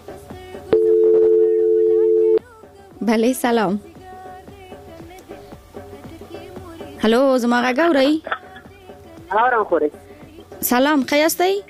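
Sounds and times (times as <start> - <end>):
telephone line tone as a listener's call connects on a call-in radio show: 0.7 - 2.4
speech: 3.1 - 3.9, 7.0 - 8.3, 9.3 - 10.0, 10.6 - 11.6.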